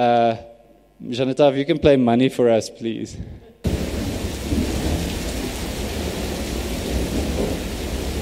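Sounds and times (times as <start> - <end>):
speech: 0.0 - 3.5
steady dense rainfall: 3.6 - 8.2
deep rolling thunder: 3.7 - 8.2.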